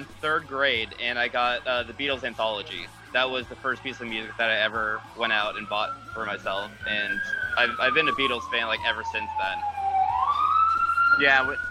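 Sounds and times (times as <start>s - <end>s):
speech: 0.1s - 9.8s, 11.2s - 11.6s
police siren from passing police cars wailing: 1.4s - 11.6s.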